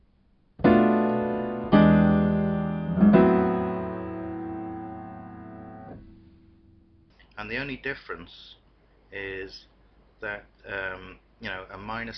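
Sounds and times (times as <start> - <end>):
minor cadence chord progression played: 0.6 - 7.1
speech: 7.5 - 12.1.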